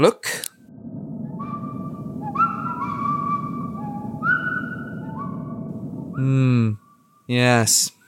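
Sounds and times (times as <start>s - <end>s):
speech: 0.0s - 0.5s, 6.2s - 8.0s
low rumble: 0.6s - 7.3s
person whistling a little tune: 1.4s - 6.8s.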